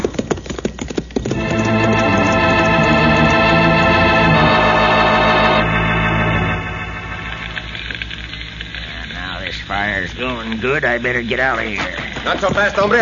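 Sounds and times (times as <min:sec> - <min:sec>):
horses galloping: 0:00.0 - 0:03.4, 0:10.3 - 0:13.0
loud sustained tonal swell with layered harmonics: 0:01.3 - 0:08.8
speech: 0:10.5 - 0:13.0.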